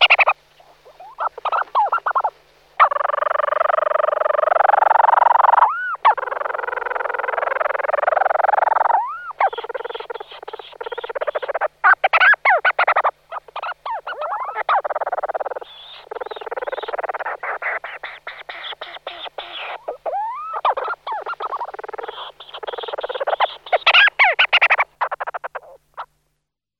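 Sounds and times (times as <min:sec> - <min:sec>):
European storm petrel churring call: 0:00.0 - 0:26.1.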